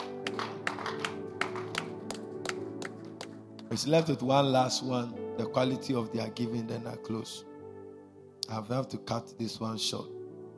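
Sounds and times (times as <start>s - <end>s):
group clapping in rhythm: 0.0s - 3.7s
speech: 3.7s - 7.5s, 8.5s - 10.2s.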